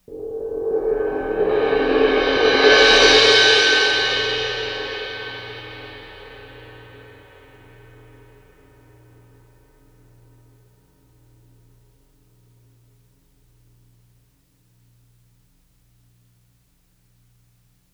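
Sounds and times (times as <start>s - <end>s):
suspended cymbal medium roll: 0.0s - 14.2s.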